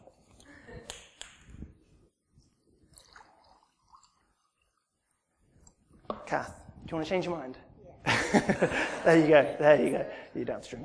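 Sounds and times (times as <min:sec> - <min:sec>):
drink pouring into a cup: 0:02.6 - 0:05.2
speech: 0:06.3 - 0:07.6, 0:08.3 - 0:10.8
laughter: 0:08.1 - 0:10.2.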